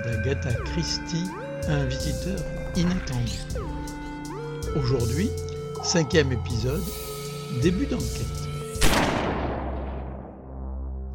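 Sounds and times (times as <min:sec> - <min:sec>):
speech: 0:00.2 - 0:03.7, 0:04.7 - 0:08.4
single gunshot in a radio crime drama: 0:08.8 - 0:10.4.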